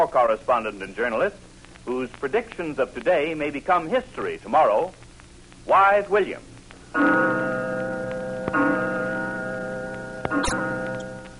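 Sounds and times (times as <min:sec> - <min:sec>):
speech: 0:00.0 - 0:05.0, 0:05.6 - 0:07.5
clock chime ringing: 0:08.5 - 0:11.2.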